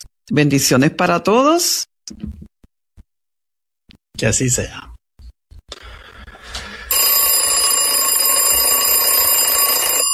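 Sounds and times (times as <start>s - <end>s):
speech: 0.3s - 2.5s, 4.2s - 4.9s
alarm clock with shrill electronic ring: 6.9s - 10.1s.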